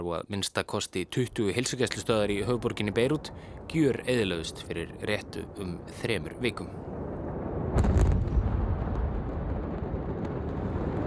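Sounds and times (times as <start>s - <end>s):
speech: 0.0s - 7.2s
heavy sustained low roar and rumble: 1.8s - 11.0s
large warehouse explosion blast at a port: 6.8s - 11.0s.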